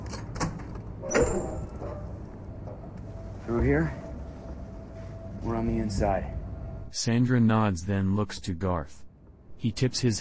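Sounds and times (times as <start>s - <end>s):
door opening with a mechanical clunk and hissing slide: 0.0s - 2.1s
low hum: 0.0s - 10.1s
speech: 3.5s - 4.0s, 5.4s - 9.0s, 9.6s - 10.1s.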